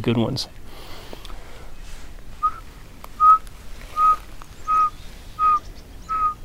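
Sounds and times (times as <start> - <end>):
speech: 0.0 - 0.9
person whistling an imitation of a pygmy owl call: 2.4 - 6.4.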